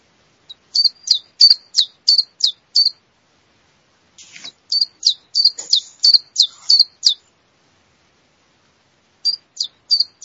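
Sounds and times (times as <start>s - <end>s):
male common chiffchaff singing: 0.4s - 3.0s, 4.2s - 7.3s, 9.2s - 10.2s.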